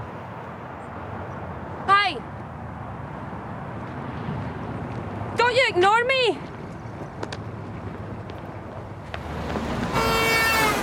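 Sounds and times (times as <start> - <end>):
street noise at a crossroads in a residential area: 0.0 - 10.8
speech: 5.6 - 6.5
car horn honking at pedestrian: 9.9 - 10.8.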